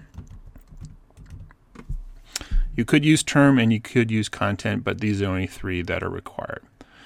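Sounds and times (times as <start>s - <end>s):
rapid typing on a computer keyboard into a web form: 0.0s - 1.6s
speech: 2.8s - 6.7s.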